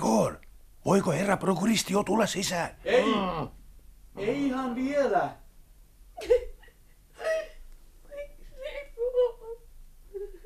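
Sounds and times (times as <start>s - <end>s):
speech: 0.8s - 3.6s, 4.2s - 5.4s, 6.2s - 6.5s
young woman crying and sobbing: 6.2s - 10.4s.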